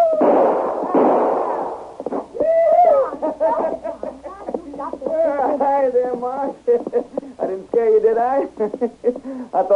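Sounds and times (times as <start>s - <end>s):
gunshots from a rider on horseback: 0.1s - 2.3s
laughter: 2.8s - 7.4s, 8.2s - 9.5s
speech: 8.1s - 9.7s.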